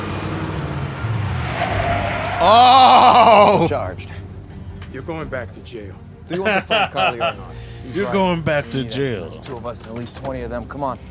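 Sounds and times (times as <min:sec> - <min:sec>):
car engine rumbling while driving: 0:00.0 - 0:06.2
short high tire squeal: 0:00.6 - 0:03.7
speech: 0:02.4 - 0:04.2, 0:04.9 - 0:11.0
laughter: 0:06.3 - 0:07.6.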